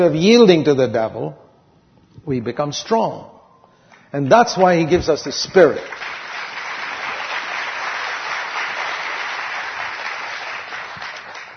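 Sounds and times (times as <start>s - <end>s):
speech: 0.0s - 1.4s, 2.2s - 3.3s, 4.1s - 6.2s
crowd clapping: 3.9s - 11.5s.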